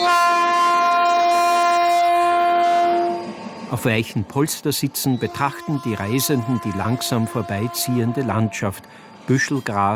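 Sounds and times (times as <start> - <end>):
train horn blast: 0.0 - 3.4, 5.2 - 8.6
speech: 3.7 - 9.9.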